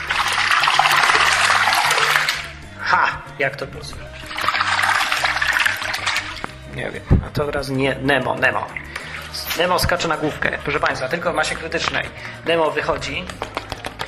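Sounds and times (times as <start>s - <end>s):
water sloshing and splashing in a bathtub: 0.0s - 2.7s, 4.0s - 7.4s, 8.4s - 12.3s
speech: 3.4s - 4.3s, 6.8s - 13.5s.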